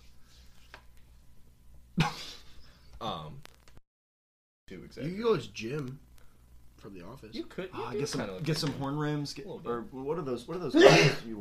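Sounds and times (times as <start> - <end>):
speech: 4.7 - 6.1, 6.8 - 11.4
loud breathy sneeze: 10.8 - 11.3.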